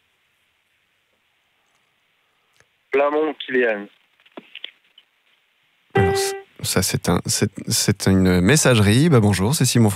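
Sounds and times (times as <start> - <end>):
speech: 3.1 - 4.0, 6.1 - 9.9
ringback tone calling a company landline: 6.0 - 6.4.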